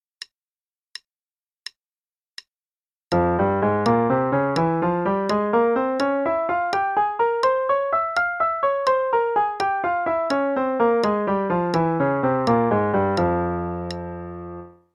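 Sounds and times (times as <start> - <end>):
F harmonic minor scale over three octaves: 3.1 - 14.9.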